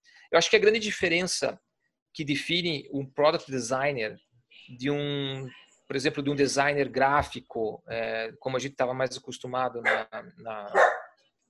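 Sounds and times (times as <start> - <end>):
speech: 0.3 - 10.9
pet dog barking: 9.8 - 10.1, 10.7 - 11.1.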